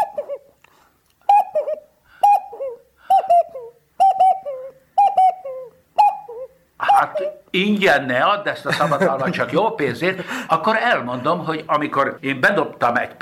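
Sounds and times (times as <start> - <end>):
person imitating an owl or cuckoo call: 0.0 - 0.5, 1.2 - 7.5
speech: 7.6 - 13.2.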